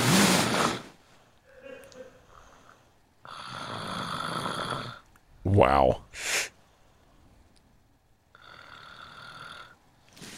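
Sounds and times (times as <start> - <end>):
woman snoring loudly in her sleep: 3.2 - 5.0, 8.3 - 9.8
speech: 5.6 - 6.5.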